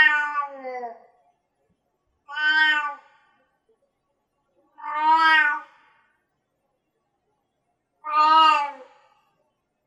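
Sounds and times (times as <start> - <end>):
cat giving plaintive meows: 0.0 - 1.0, 2.3 - 3.0, 4.8 - 5.7, 8.0 - 8.8.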